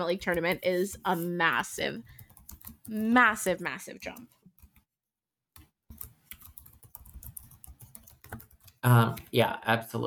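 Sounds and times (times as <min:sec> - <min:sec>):
speech: 0:00.0 - 0:02.2, 0:02.9 - 0:04.4, 0:08.8 - 0:10.0
typing on a computer keyboard: 0:02.0 - 0:04.8, 0:05.6 - 0:08.8.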